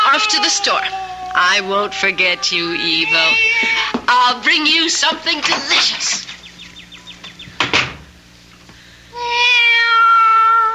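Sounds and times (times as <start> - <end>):
cat meowing: 0.0 - 4.0, 9.1 - 10.7
speech: 0.2 - 6.2
door or cupboard knocking: 7.6 - 8.1.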